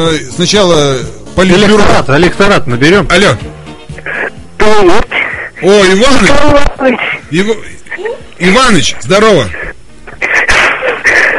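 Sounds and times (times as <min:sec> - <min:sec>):
speech: 0:00.0 - 0:03.5, 0:04.8 - 0:07.8, 0:08.4 - 0:09.6
heavy rasping breaths blown into a phone receiver: 0:05.1 - 0:05.6, 0:09.5 - 0:11.3.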